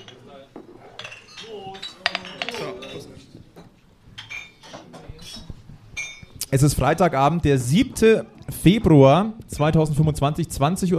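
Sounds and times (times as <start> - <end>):
glasses clinking together during a toast at a regulars' table gathering: 0.0 - 0.3, 0.9 - 3.2, 4.2 - 6.4
speech: 6.5 - 10.9.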